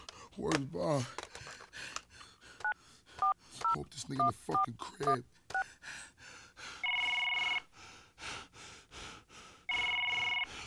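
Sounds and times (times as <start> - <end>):
heavy rhythmic breathing or gasping: 0.0 - 10.6
speech: 0.4 - 1.2, 3.8 - 5.4
phone ringback tone during an outgoing call: 6.8 - 7.7, 9.7 - 10.5.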